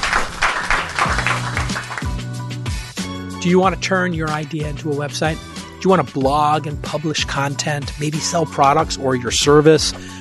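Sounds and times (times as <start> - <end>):
crowd clapping: 0.0 - 2.5
speech: 3.4 - 10.1.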